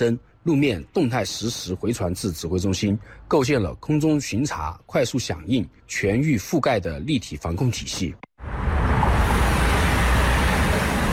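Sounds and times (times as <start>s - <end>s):
speech: 0.0s - 8.7s
heavy highway traffic passing: 8.4s - 11.1s.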